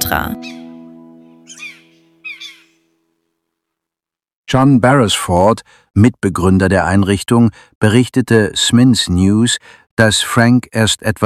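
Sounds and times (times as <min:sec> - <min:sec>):
speech: 0:00.1 - 0:00.6, 0:04.5 - 0:11.2
jackdaw calling: 0:00.4 - 0:02.9.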